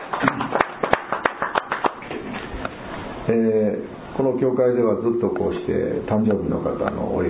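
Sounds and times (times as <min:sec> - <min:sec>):
church congregation applauding a birthday: 0:00.0 - 0:02.2
speech: 0:03.3 - 0:07.2.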